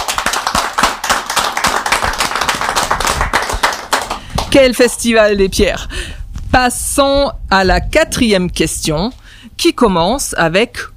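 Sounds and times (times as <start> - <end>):
crowd applauding with many hands clapping: 0.0 - 4.5
speech: 4.5 - 10.9.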